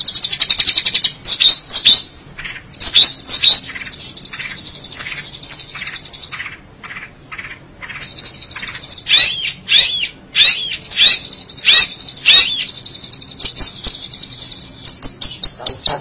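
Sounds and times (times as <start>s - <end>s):
long-tailed shrike singing: 0.0s - 15.9s.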